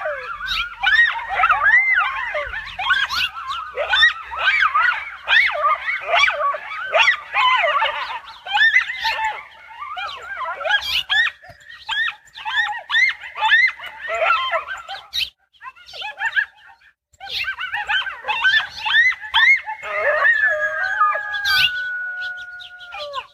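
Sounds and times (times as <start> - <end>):
pair of coyotes yipping and howling: 0.0 - 23.3.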